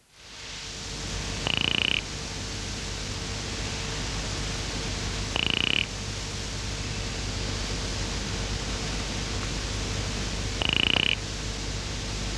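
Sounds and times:
constant background hiss: 0.0 - 12.3
Cophixalus monticola mountain-top nursery frog pulsed buzzing calls: 1.3 - 2.2, 5.2 - 6.1, 10.5 - 11.4.

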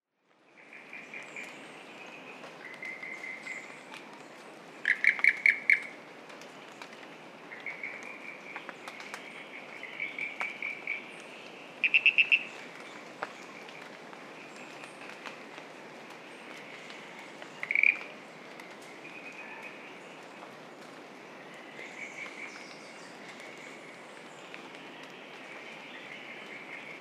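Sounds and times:
Ischnocnema holti calling: 4.8 - 5.9, 11.8 - 12.5, 17.6 - 18.1.

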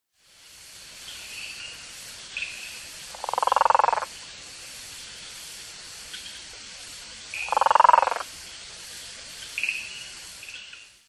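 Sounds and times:
Mantidactylus guttulatus calling: 1.2 - 4.2, 7.3 - 8.3, 9.5 - 10.8.

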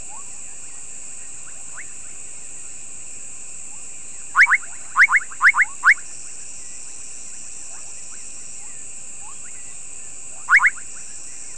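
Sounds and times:
bubbling kassina Kassina senegalensis calls: 4.4 - 6.0, 10.3 - 10.9.

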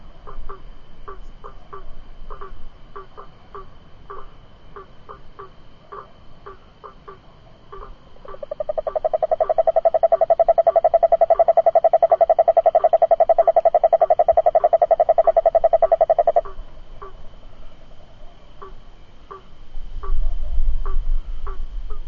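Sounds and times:
Cururu toad Rhinella icterica giving a fast pulsed trill: 0.3 - 17.2.

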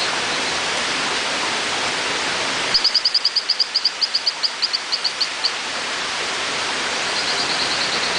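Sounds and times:
rushing water: 0.0 - 8.1
Hylodes phyllodes chirping call: 2.8 - 5.6, 7.1 - 8.1.

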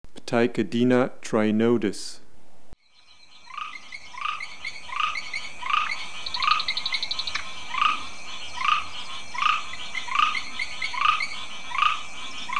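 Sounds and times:
speech: 0.3 - 2.2
grass frog Ptychadena trinodis chirping: 2.8 - 12.5
high insect trill: 2.8 - 12.5.

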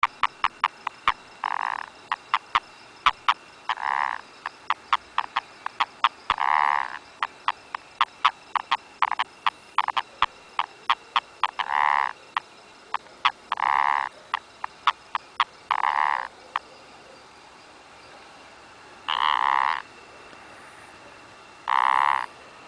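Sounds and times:
Rhinella ornata toad calling: 0.0 - 17.3, 19.0 - 20.4, 21.1 - 22.4.

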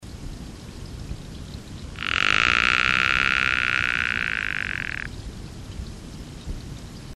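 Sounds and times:
Mantidactylus betsileanus frog calling: 1.9 - 5.1.

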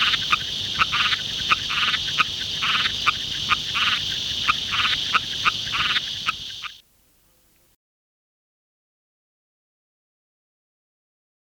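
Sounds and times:
broad-palmed rocket frog Litoria latopalmata calling: 0.0 - 6.8.

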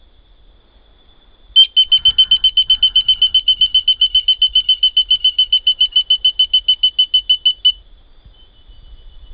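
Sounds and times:
Oreophryne penelopeia frog call of high tonal beeps: 1.6 - 9.0.

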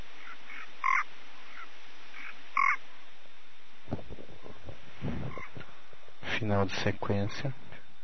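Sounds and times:
Physalaemus nanus frog call: 0.0 - 3.1, 4.4 - 5.8
faint frog calls: 0.0 - 8.0
low rumbling knocks: 3.8 - 6.0
speech: 6.4 - 7.6.

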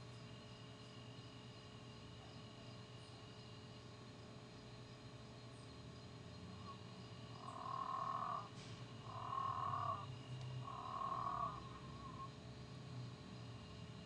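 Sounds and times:
low steady hum: 0.0 - 14.0
Physalaemus moreirae frog calling with drawn-out nasal notes: 6.6 - 12.4.

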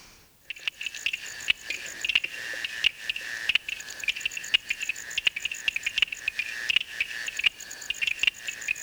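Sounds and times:
stonemason toadlet Uperoleia lithomoda calling with clicking notes: 0.4 - 8.8.

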